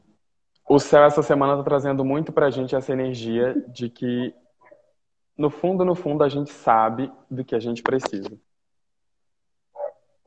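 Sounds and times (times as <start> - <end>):
speech: 0.7 - 4.4, 5.4 - 8.5
dog barking sharply: 9.7 - 10.2.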